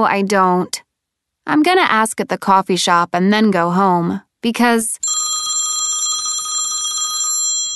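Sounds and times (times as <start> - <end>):
speech: 0.0 - 0.8, 1.5 - 5.2
cell phone ringing with trilling electronic tone: 5.0 - 7.7.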